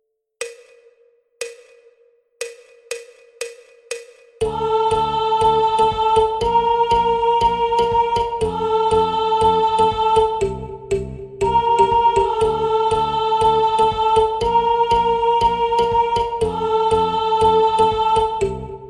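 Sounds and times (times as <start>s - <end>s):
first voice singing an interlude: 4.4s - 10.7s, 11.4s - 18.8s.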